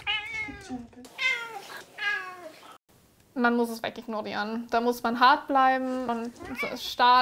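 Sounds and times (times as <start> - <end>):
cat meowing: 0.0 - 2.6
speech: 0.7 - 1.1, 3.4 - 7.2.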